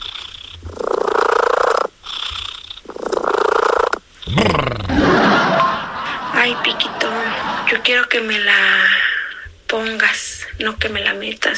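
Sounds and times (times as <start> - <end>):
cat purring loudly: 0.0 - 4.9
laughter: 4.3 - 8.1
speech: 7.8 - 9.0, 9.7 - 11.5.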